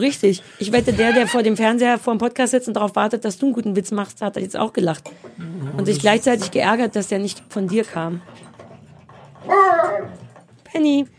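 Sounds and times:
speech: 0.0 - 8.4, 9.4 - 11.1
dog whimpering: 9.5 - 10.2.

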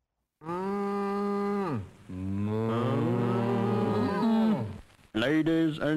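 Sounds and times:
cow mooing: 0.4 - 4.8
speech: 5.2 - 5.9.

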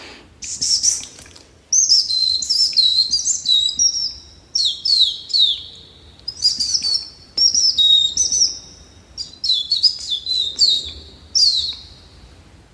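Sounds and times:
person whistling imitations of bird calls through a gap in the teeth: 0.4 - 12.0.

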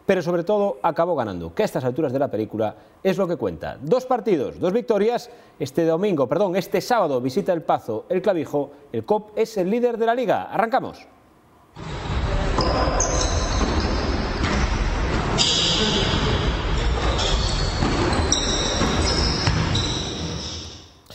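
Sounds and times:
speech: 0.1 - 11.1
indistinct voices: 11.8 - 20.3
gym noise: 11.8 - 20.9
basketball sneakers squeaking on a hardwood court: 12.5 - 21.0.

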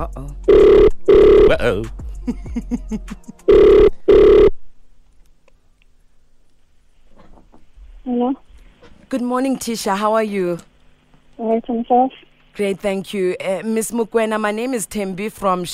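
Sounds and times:
speech: 0.0 - 0.9, 1.5 - 4.2, 8.1 - 8.5, 9.1 - 10.7, 11.4 - 15.7
telephone ringback tone on an outgoing call: 0.5 - 1.6, 3.5 - 4.6
laughter: 2.2 - 3.5.

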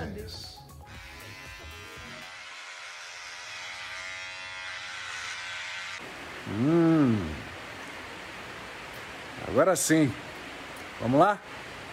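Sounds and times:
electric shaver buzzing while shaving off a thick-stubbled beard: 0.8 - 6.8
speech: 6.5 - 7.3, 9.5 - 10.3, 11.0 - 11.7.

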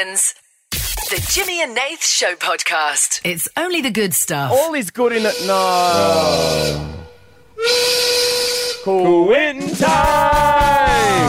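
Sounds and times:
speech: 0.0 - 0.4, 1.1 - 6.9, 7.6 - 8.1, 8.8 - 10.7
loud whistle blowing: 5.2 - 9.0.

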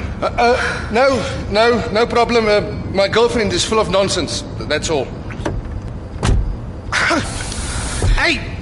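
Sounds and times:
speech: 0.2 - 5.2, 8.3 - 8.5
car door locks clunking shut from inside the vehicle: 5.3 - 6.5
car door lock actuator whirring and rattling: 5.3 - 6.8.

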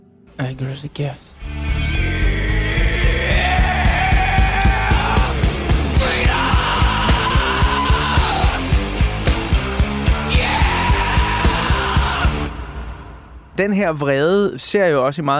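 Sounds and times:
speech: 0.4 - 1.6, 13.6 - 15.3
dense wall of distorted guitar: 1.4 - 12.5
loud rap-metal music: 1.6 - 14.0
raw shouted vocal: 2.0 - 9.0, 10.0 - 12.6
pounding steady drums: 3.2 - 14.0.

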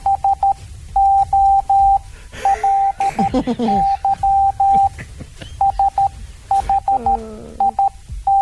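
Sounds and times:
Morse code beeps: 0.0 - 5.0, 5.6 - 8.4
laughter: 2.3 - 6.2
person moaning from a burn: 6.9 - 7.8.

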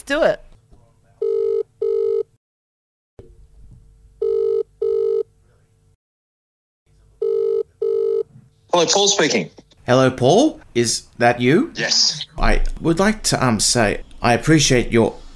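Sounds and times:
speech: 0.0 - 0.5, 8.8 - 15.2
outgoing phone call ringback tone: 1.2 - 2.3, 4.2 - 5.2, 7.2 - 8.3.

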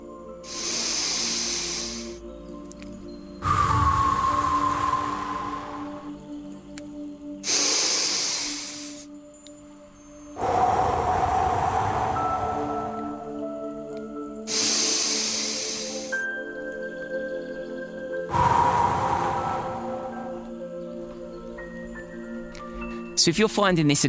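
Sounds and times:
slow deep breathing: 0.4 - 2.3, 3.4 - 6.5, 7.4 - 9.1, 10.3 - 16.2, 18.2 - 20.8
speech: 23.2 - 24.0.

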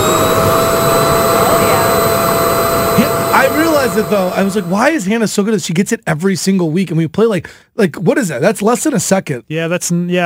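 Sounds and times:
vacuum cleaner running: 0.0 - 5.1
speech: 3.0 - 10.2.

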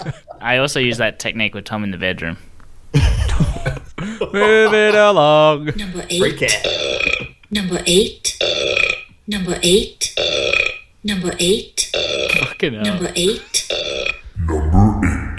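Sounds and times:
laughter: 0.0 - 1.0, 3.0 - 7.3
speech: 0.0 - 3.1, 4.1 - 8.4, 9.3 - 10.3, 11.0 - 12.0, 12.6 - 13.7
loud burps: 6.4 - 7.4, 8.4 - 9.1, 10.2 - 10.9, 12.0 - 15.3.

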